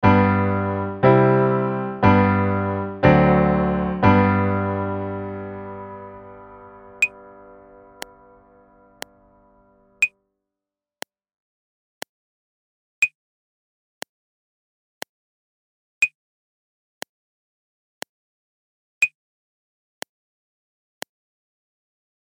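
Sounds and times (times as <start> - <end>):
music in G major in 3-4 time without piano: 0.0 - 10.1.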